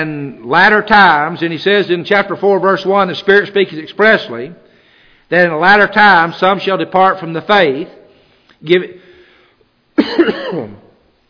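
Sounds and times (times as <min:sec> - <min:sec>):
speech: 0:00.0 - 0:04.6, 0:05.3 - 0:08.0, 0:08.6 - 0:09.0, 0:10.0 - 0:10.8
person coughing at a microphone during a sermon: 0:10.0 - 0:10.9.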